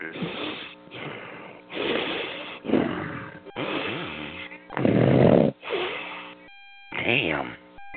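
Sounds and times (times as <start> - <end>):
loud snoring: 0.0 - 6.0.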